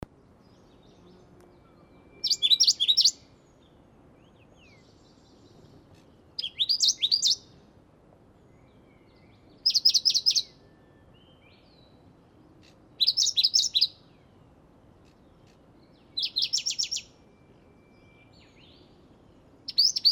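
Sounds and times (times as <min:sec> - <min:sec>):
Martens's warbler Seicercus omeiensis: 0:00.2 - 0:07.6, 0:08.4 - 0:20.1.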